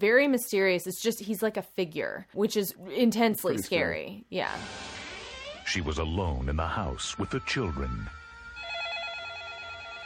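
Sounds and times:
speech: 0.0s - 5.0s, 5.7s - 8.2s
telephone ringing with rapid warbling electronic trill: 8.6s - 10.0s.

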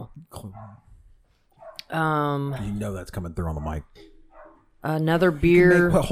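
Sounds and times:
dog barking down the street heard through a studio window: 0.4s - 0.8s, 1.6s - 1.9s, 4.3s - 4.7s
speech: 1.9s - 4.1s, 4.8s - 6.1s.

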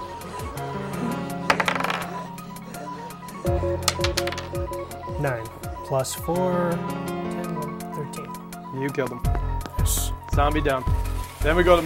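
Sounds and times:
music: 0.0s - 11.8s
dice rolling on a hard table: 1.5s - 2.3s, 3.9s - 4.5s
speech: 3.8s - 7.2s, 8.8s - 11.8s.

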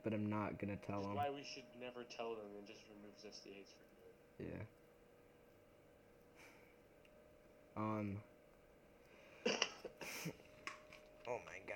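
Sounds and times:
speech: 0.0s - 4.8s, 7.8s - 8.3s, 11.2s - 11.7s
short voiced hum: 0.0s - 11.7s
man giving quick breathy coughs: 9.4s - 10.4s.

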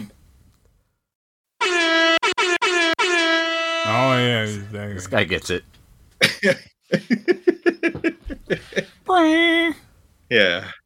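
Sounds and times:
air horn blasts from a phone app: 1.6s - 4.2s
speech: 4.2s - 7.5s, 8.5s - 10.8s.

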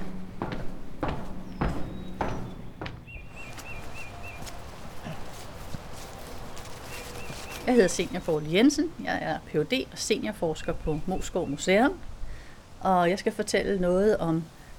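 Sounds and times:
footsteps walking down a staircase: 0.0s - 8.1s
speech: 7.7s - 12.1s, 12.8s - 14.6s.

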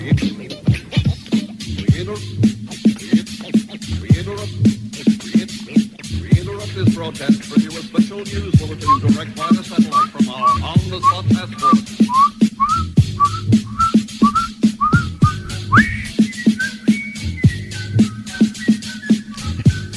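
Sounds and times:
thumping beat: 0.1s - 17.8s
person whistling a bouncy lively melody: 8.8s - 9.2s, 9.8s - 19.9s.

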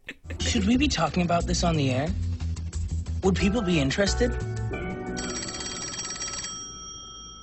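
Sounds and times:
speech: 0.5s - 2.3s, 3.2s - 4.5s
telephone ringing with a trilling electronic bell: 4.9s - 7.4s.

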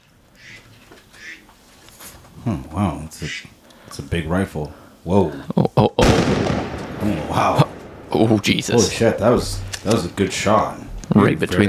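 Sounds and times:
faint hiss: 0.0s - 11.6s
duck quacking: 0.4s - 1.5s
speech: 2.4s - 6.4s, 7.0s - 7.6s, 8.2s - 11.6s.

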